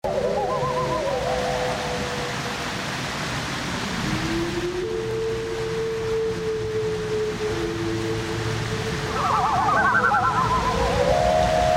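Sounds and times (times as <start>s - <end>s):
loon wailing and tremolo calls: 0.0s - 2.6s, 4.3s - 11.7s
low rumble and hiss: 0.1s - 11.7s.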